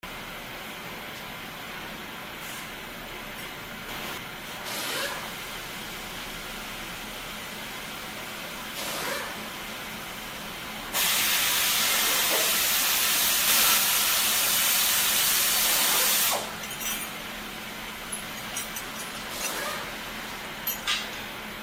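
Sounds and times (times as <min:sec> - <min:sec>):
urban auto repair garage: 0:00.0 - 0:21.6.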